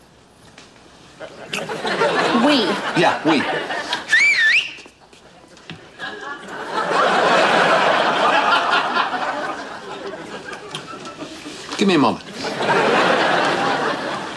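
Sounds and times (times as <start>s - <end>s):
speech: 1.2s - 3.9s, 11.8s - 12.3s
laughter: 1.2s - 4.2s, 5.2s - 14.3s
person whistling to signal a group to come in: 4.1s - 4.9s.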